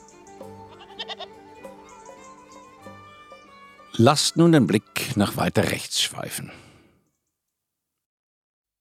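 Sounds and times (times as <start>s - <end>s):
goats bleating while grazing outdoors by castle tower ruins: 0.7s - 1.4s
speech: 4.0s - 6.7s.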